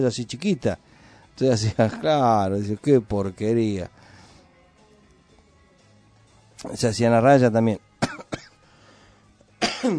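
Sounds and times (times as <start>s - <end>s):
speech: 0.0s - 4.0s, 6.6s - 8.3s
person recovering from illness coughing: 8.0s - 8.6s, 9.6s - 9.9s.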